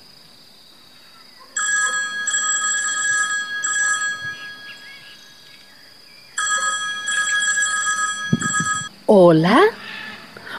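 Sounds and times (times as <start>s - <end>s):
telephone ringing: 1.6s - 5.2s, 6.4s - 8.9s
speech: 9.1s - 9.8s.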